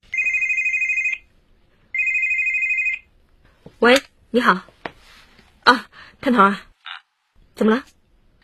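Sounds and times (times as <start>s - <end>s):
woman's mobile phone electronic ringtone: 0.1s - 1.3s, 1.9s - 3.1s
speech: 3.8s - 4.7s, 5.7s - 6.7s, 7.6s - 7.9s.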